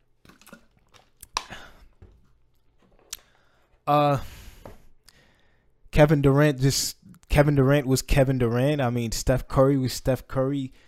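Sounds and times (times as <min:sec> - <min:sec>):
small sips and a swallow of water: 0:00.0 - 0:02.0
soft lip smacks while drinking water: 0:00.2 - 0:01.9, 0:03.1 - 0:03.3
speech: 0:03.9 - 0:04.3, 0:06.0 - 0:10.8.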